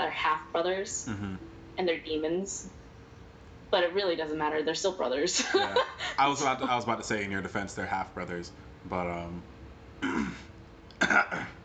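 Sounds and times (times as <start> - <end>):
speech: 0.1 - 2.8, 3.7 - 10.4, 11.0 - 11.6
person clearing throat: 1.1 - 1.4, 10.0 - 11.6.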